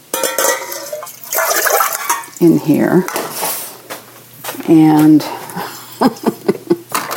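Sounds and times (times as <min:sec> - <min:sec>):
high-alkaline Kangen water pouring into a larger pan: 0:00.7 - 0:02.5
speech: 0:02.4 - 0:03.2, 0:04.6 - 0:05.3, 0:06.0 - 0:06.3
laughter: 0:05.8 - 0:07.0.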